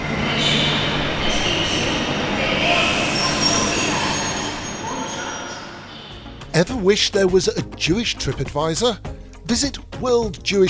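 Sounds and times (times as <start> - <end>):
train rumbling on rails: 0.0 - 6.5
high metallic squealing from train wheels: 2.5 - 6.1
speech: 6.6 - 10.6.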